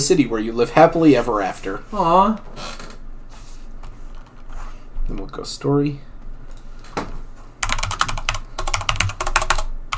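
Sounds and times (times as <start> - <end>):
speech: 0.1 - 2.8, 5.1 - 6.1
typing on a computer keyboard: 7.6 - 9.9.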